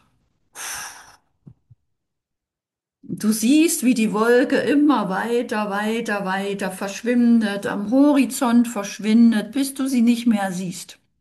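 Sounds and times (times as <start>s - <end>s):
person blowing out a breath through the lips during a relaxation exercise: 0.0s - 1.4s
speech: 3.2s - 11.0s.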